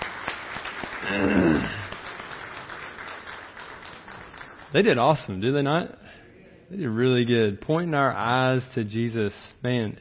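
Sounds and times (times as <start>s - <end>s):
audience applauding: 0.0s - 5.0s
speech: 1.0s - 1.8s, 4.7s - 10.0s.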